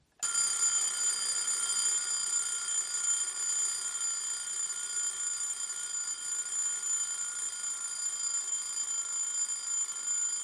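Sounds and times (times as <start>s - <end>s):
mechanical alarm clock with two bells ringing on a walnut side table: 0.2s - 10.4s.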